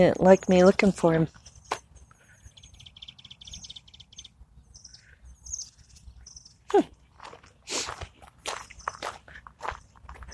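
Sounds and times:
speech: 0.0s - 1.4s
bird chirps and trills: 0.0s - 6.9s
footsteps crunching on brush: 7.0s - 10.3s.

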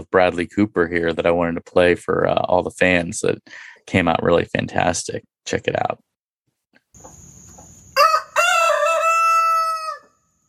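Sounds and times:
speech: 0.1s - 6.1s
rooster crowing cock-a-doodle-doo: 7.9s - 10.4s.

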